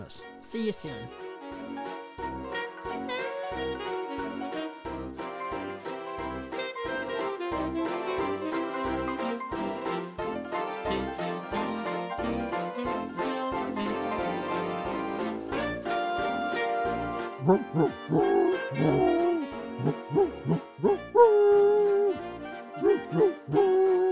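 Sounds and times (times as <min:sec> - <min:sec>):
speech: 0:00.0 - 0:01.2
sustained musical backing: 0:00.0 - 0:24.1
short pitched dog barks strung into a bouncy melody: 0:15.8 - 0:24.1.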